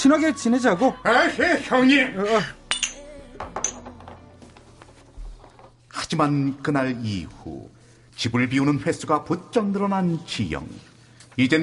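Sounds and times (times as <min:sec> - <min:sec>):
speech: 0:00.0 - 0:02.6, 0:06.1 - 0:11.6
glasses clinking in a toast: 0:02.7 - 0:04.1.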